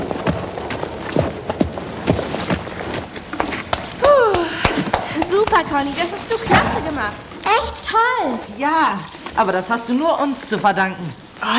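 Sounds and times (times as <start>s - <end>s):
horse hooves thudding as a rider leaves a dressage arena: 0.0s - 8.1s
steady noise: 0.0s - 11.5s
speech: 5.6s - 11.5s.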